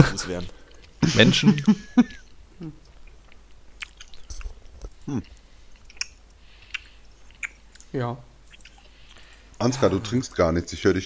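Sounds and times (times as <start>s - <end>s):
speech: 0.0s - 2.8s, 5.1s - 5.4s, 7.9s - 8.3s, 9.6s - 11.0s
person chewing cornflakes at breakfast: 2.8s - 11.0s.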